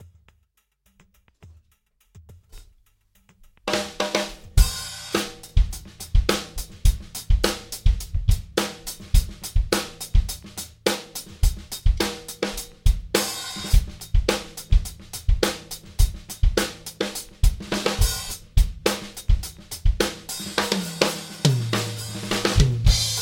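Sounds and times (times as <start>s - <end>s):
funk music at 105 BPM: 0.0s - 23.1s.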